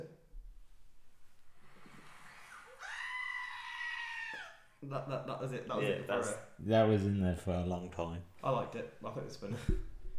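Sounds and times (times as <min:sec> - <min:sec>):
goat screaming: 0:02.3 - 0:04.8
speech: 0:04.8 - 0:09.9.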